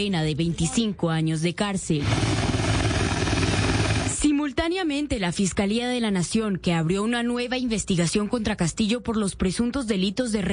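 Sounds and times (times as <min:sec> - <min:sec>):
speech: 0:00.0 - 0:02.4, 0:04.5 - 0:10.5
helicopter rotor chopping: 0:02.0 - 0:04.3.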